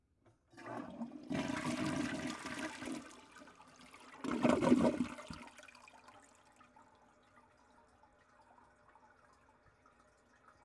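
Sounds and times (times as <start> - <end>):
toilet flushing with seat open: 0.5 - 6.2.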